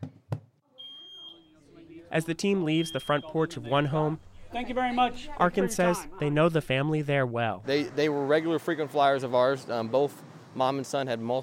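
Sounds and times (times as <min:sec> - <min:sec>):
smoke detector alarm beeping: 0:00.8 - 0:01.6, 0:02.4 - 0:03.7
speech: 0:02.1 - 0:11.4.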